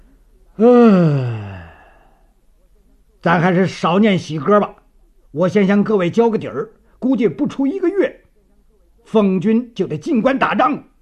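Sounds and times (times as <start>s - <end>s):
speech: 0.6s - 1.3s, 3.2s - 8.2s, 9.1s - 10.9s
exhausted man giving a long tired yawn: 0.6s - 2.1s.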